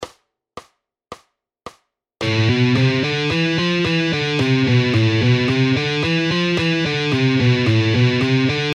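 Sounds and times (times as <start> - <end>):
guitar speed exercises: 2.2 - 8.7.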